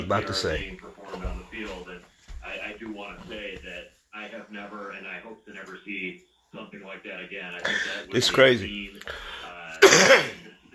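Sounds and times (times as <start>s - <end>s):
speech: 0.0s - 0.9s, 4.2s - 10.4s
breathy lead-in: 7.6s - 8.1s, 9.0s - 9.7s
harsh throat-clearing cough: 9.8s - 10.6s.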